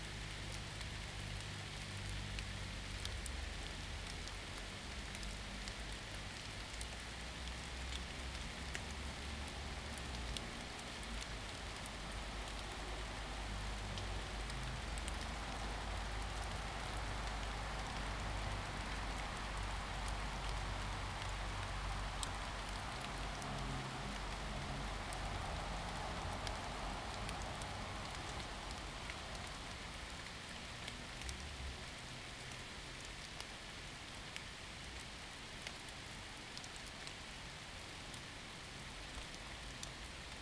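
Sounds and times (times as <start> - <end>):
rain pattering on surfaces: 0.0 - 40.4
low traffic rumble: 9.0 - 30.8.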